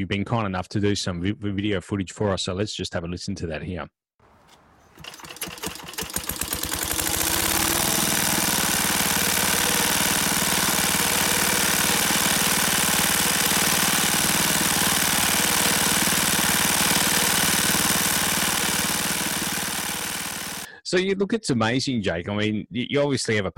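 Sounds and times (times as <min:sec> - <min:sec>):
speech: 0:00.0 - 0:04.0, 0:20.9 - 0:23.5
engine with fuel tank mounted above starting up and running: 0:04.9 - 0:20.7.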